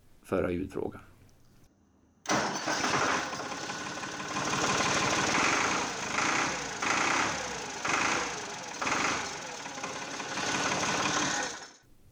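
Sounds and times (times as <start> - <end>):
speech: 0.3 - 1.1
old Valmet 405 tractor engine from 1986 running: 2.3 - 11.8.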